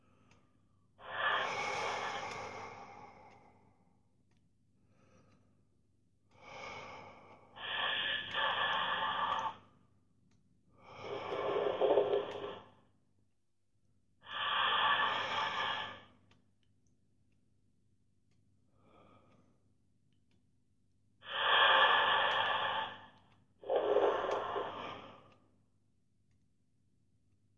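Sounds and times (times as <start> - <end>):
deep breathing in and out during a relaxation exercise: 0.0 - 4.0, 4.8 - 5.6, 6.3 - 9.8, 10.7 - 12.8, 14.2 - 16.3, 21.2 - 25.6.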